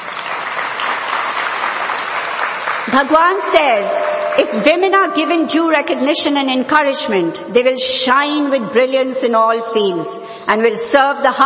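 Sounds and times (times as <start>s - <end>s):
audience applauding: 0.0s - 4.6s
speech: 2.9s - 11.4s.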